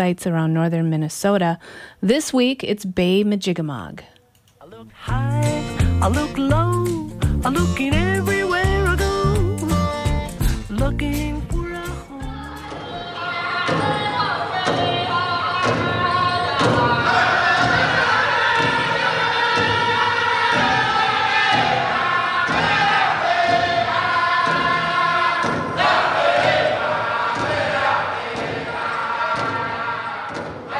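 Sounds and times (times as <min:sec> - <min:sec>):
speech: 0:00.0 - 0:04.1, 0:04.8 - 0:08.3, 0:10.8 - 0:11.4
Native American drums beating at a powwow: 0:05.0 - 0:30.7
group singing a chanted melody at a powwow in Bemidji, Minnesota: 0:11.8 - 0:30.7.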